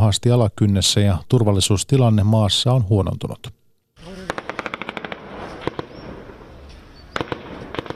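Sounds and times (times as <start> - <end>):
speech: 0.0 - 3.6
gunfire from fighters attacking an intelligence service building in Kabul, Afghanistan: 4.0 - 6.5, 7.1 - 7.9
steady roar: 4.0 - 7.9.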